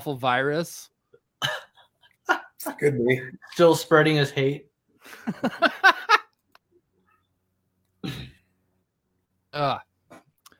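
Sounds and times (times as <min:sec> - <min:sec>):
speech: 0:00.0 - 0:01.6, 0:02.6 - 0:06.0, 0:09.5 - 0:09.9
person coughing from hard laughter: 0:01.4 - 0:01.8, 0:08.0 - 0:08.5
person laughing breathily: 0:01.4 - 0:02.8, 0:05.1 - 0:06.3.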